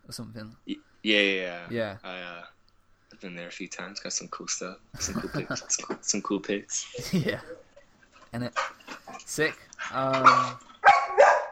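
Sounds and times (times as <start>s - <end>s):
speech: 0.1s - 2.5s, 3.1s - 7.7s, 8.3s - 10.7s
laughter: 5.0s - 7.7s
Rottweiler barking: 10.1s - 11.5s.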